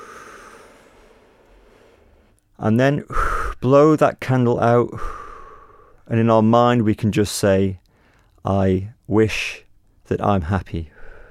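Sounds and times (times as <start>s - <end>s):
deep breath drawn in during a calm breathing exercise: 0.0s - 2.3s, 5.0s - 6.0s, 11.0s - 11.2s
speech: 2.6s - 5.2s, 6.1s - 7.8s, 8.4s - 11.0s.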